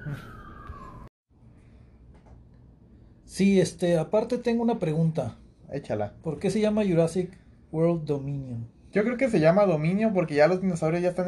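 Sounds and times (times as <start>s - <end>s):
emergency vehicle siren passing outside: 0.0s - 1.1s
speech: 0.1s - 0.3s, 3.3s - 11.2s
dull hum: 1.4s - 11.2s.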